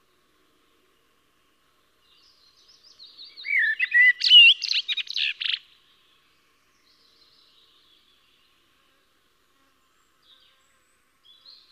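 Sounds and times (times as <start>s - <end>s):
Eurasian blackbird buzzy twittering: 3.3s - 5.6s.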